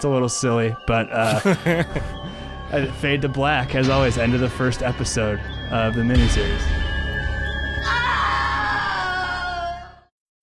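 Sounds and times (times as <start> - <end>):
speech: 0.0 - 6.8
laughter: 1.2 - 2.2
exaggerated theatrical scream: 7.8 - 10.1.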